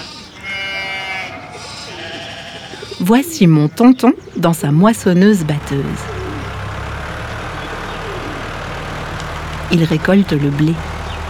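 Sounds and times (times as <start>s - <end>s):
sheep bleating in a meadow: 0.0s - 4.4s
steady rustling ambient noise: 1.3s - 11.2s
speech: 3.0s - 6.2s, 9.7s - 10.9s.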